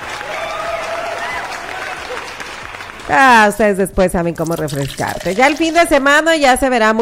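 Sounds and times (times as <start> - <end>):
whistles and cheers: 0.0 - 2.6
dense crowd applause: 0.0 - 3.5
speech: 3.1 - 7.0.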